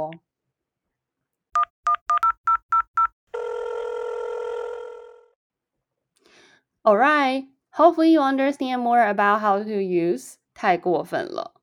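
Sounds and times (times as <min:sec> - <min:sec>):
telephone keypad dialing tones: 0:01.6 - 0:03.6
sustained phone tone: 0:03.4 - 0:05.2
speech: 0:06.8 - 0:11.5.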